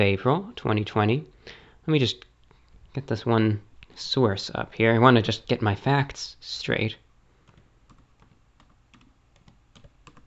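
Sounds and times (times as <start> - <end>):
speech: 0.0 - 2.3, 2.9 - 7.0
one-handed typing on a computer keyboard: 7.4 - 10.2.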